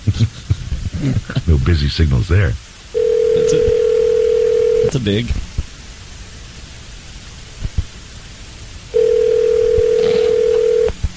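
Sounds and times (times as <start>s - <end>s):
speech: 1.0s - 2.7s, 3.4s - 3.8s, 4.9s - 5.4s
telephone ring tone over the line: 3.0s - 5.0s, 9.0s - 11.0s.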